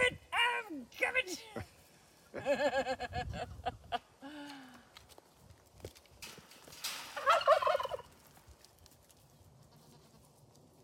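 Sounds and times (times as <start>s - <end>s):
laughter: 2.3s - 4.0s
rustling: 4.8s - 10.8s
turkey gobbling: 7.1s - 8.2s.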